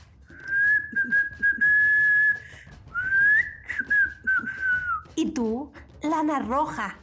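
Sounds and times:
person whistling an imitation of a nambú tinamou call: 0:00.3 - 0:05.1
speech: 0:05.2 - 0:07.0.

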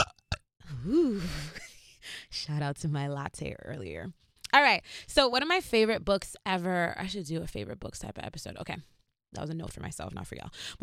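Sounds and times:
burp: 0:00.0 - 0:00.5
speech: 0:02.4 - 0:10.8.

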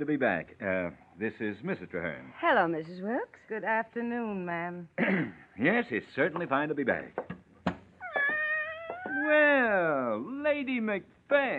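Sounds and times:
speech: 0:00.0 - 0:07.3, 0:09.3 - 0:11.5
soft thumps: 0:06.4 - 0:09.3
cat meowing: 0:08.0 - 0:09.6.

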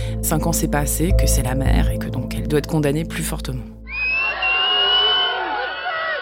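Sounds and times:
speech: 0:00.3 - 0:03.8
dense crowd at a courthouse yelling and booing: 0:03.9 - 0:06.1
shrill shouts rising above the crowd: 0:03.9 - 0:06.1.

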